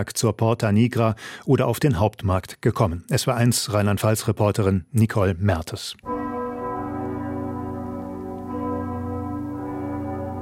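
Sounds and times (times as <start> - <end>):
speech: 0.0 - 6.1
several church bells ringing in a dense peal: 6.0 - 10.4.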